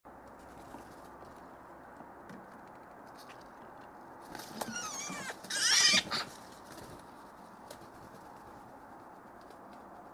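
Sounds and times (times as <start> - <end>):
Eurasian magpie Pica pica harsh calls: 4.7 - 6.3.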